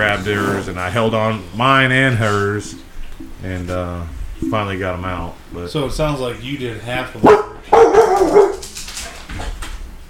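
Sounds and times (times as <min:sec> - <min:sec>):
speech: 0:00.0 - 0:08.6
dog barking at a passing car: 0:07.2 - 0:08.7.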